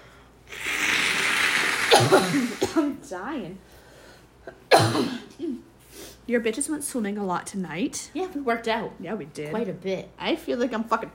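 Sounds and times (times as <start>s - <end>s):
nose blowing into a tissue: 0.4s - 2.6s
speech: 2.0s - 3.7s, 4.5s - 5.6s, 6.3s - 11.1s.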